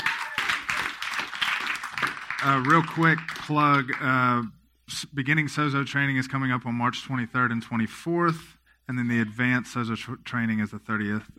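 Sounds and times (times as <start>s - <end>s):
audience applauding: 0.0s - 4.1s
speech: 2.4s - 11.3s.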